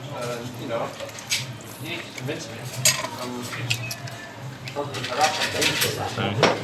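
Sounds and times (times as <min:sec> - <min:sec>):
bar tools and glassware clinking as a bartender free pours a dry martini: 0:00.2 - 0:06.6.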